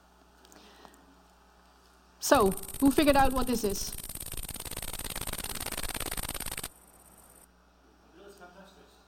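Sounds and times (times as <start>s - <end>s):
speech: 2.2s - 4.0s
great green bush cricket stridulating: 2.2s - 7.5s.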